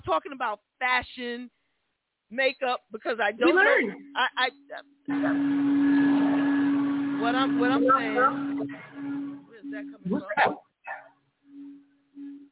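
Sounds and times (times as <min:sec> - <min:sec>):
speech: 0:00.1 - 0:01.6, 0:02.3 - 0:08.9, 0:09.7 - 0:10.7
vacuum cleaner droning with broadband whir and low hum: 0:05.1 - 0:10.5.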